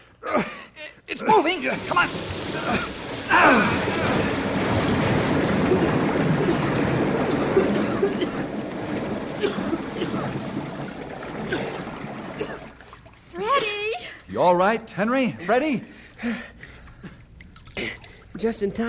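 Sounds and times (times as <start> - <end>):
speech: 0.4 - 4.3, 8.0 - 8.6, 14.4 - 16.5, 18.4 - 18.8
water rushing out through an opened door: 1.3 - 13.8.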